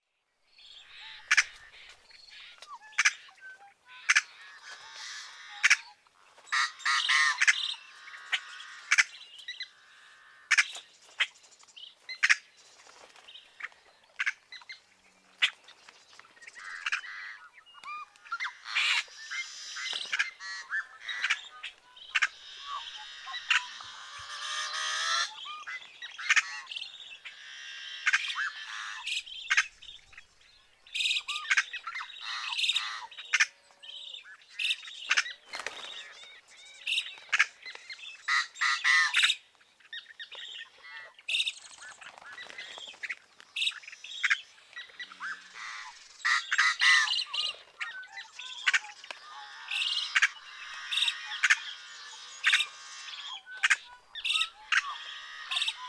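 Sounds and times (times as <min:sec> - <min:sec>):
yellow-headed blackbird calling: 0:00.6 - 0:10.9, 0:13.4 - 0:55.8.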